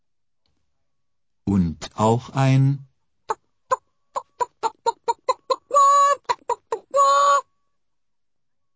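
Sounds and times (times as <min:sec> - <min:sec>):
speech: 0:01.5 - 0:02.9
chicken clucking and squawking: 0:03.3 - 0:07.4.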